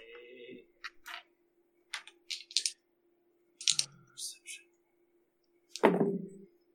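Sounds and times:
faint steady hum: 0:00.0 - 0:06.7
two dice rolling in a dice tray under a phone: 0:01.9 - 0:02.8, 0:03.6 - 0:03.9
heavy thunk: 0:05.8 - 0:06.3.

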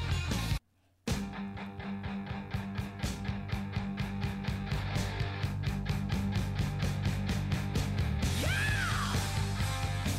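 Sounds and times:
rock music with drums and distorted guitars: 0:00.0 - 0:10.1
rock singer belting a high swooping yell: 0:08.3 - 0:09.5.

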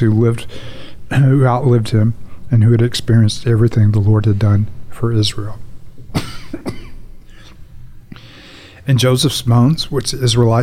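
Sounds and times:
speech: 0:00.0 - 0:06.8, 0:08.8 - 0:10.6
breathy exhale: 0:00.5 - 0:01.0, 0:07.3 - 0:08.9
person coughing into the microphone: 0:06.1 - 0:07.1.

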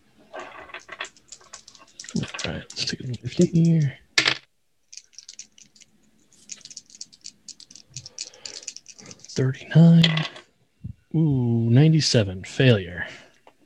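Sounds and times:
coins dropping into a pool: 0:00.4 - 0:10.4
speech: 0:03.1 - 0:04.0, 0:09.4 - 0:10.4, 0:11.1 - 0:13.2.

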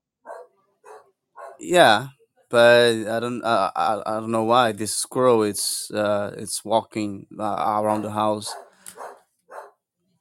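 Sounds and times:
dog barking outside the house at night: 0:00.2 - 0:01.6, 0:08.5 - 0:09.8
faint low noise: 0:00.3 - 0:10.1
speech: 0:01.6 - 0:08.6.

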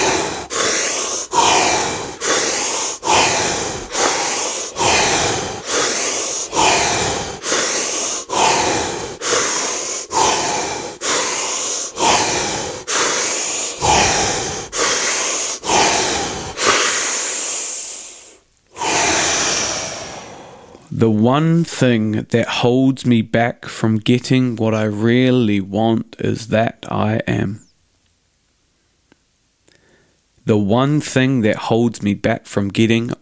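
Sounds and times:
forceful breaths in a deep breathing exercise: 0:00.0 - 0:20.9
speech: 0:21.0 - 0:27.6, 0:30.4 - 0:33.2.

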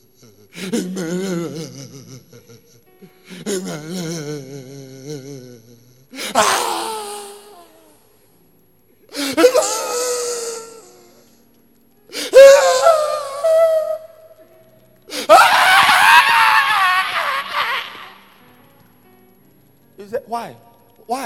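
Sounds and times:
speech: 0:00.6 - 0:02.4, 0:03.5 - 0:04.4
person crying out and screaming: 0:06.2 - 0:07.9, 0:09.2 - 0:11.0, 0:12.3 - 0:14.1, 0:15.1 - 0:18.3.

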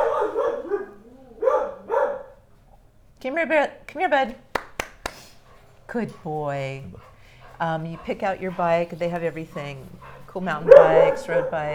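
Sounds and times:
dog whining: 0:00.0 - 0:02.4, 0:06.2 - 0:11.7
dog barking: 0:00.0 - 0:02.5, 0:05.4 - 0:11.7
speech: 0:03.2 - 0:04.4, 0:05.9 - 0:11.7.

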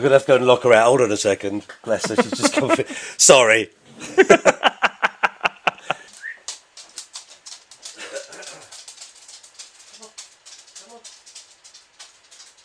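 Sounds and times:
speech: 0:00.0 - 0:04.7
laughter: 0:02.0 - 0:03.0, 0:04.0 - 0:06.0
dog claws clicking on a hard floor: 0:06.0 - 0:12.6.

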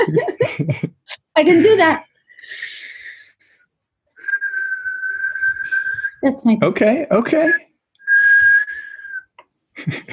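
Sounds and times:
laughter: 0:00.0 - 0:01.0, 0:09.8 - 0:10.1
speech: 0:00.0 - 0:02.7, 0:06.2 - 0:07.7, 0:09.8 - 0:10.1
breathy whistle attempt while inhaling: 0:04.2 - 0:06.2, 0:08.0 - 0:09.4
whistled tone while inhaling: 0:04.2 - 0:06.2, 0:07.5 - 0:09.4.

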